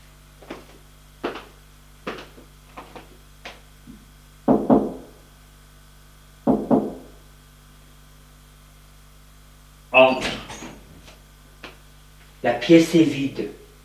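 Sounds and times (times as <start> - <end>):
knocking on a door: 4.5 - 5.1, 6.5 - 7.2
speech: 10.0 - 10.4, 12.4 - 13.6.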